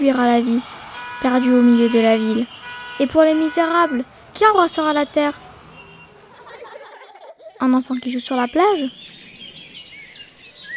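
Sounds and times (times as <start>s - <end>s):
speech: 0.0s - 5.4s, 7.6s - 9.2s
laughter: 6.2s - 7.6s
bird chirping and warbling in a treetop: 7.8s - 10.7s.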